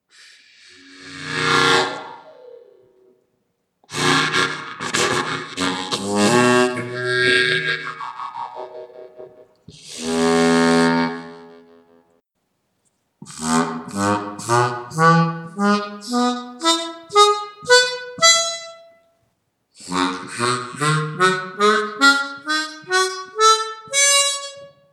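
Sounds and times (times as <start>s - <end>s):
harmonica lick: 3.9s - 11.7s, 13.2s - 19.0s, 19.8s - 24.8s.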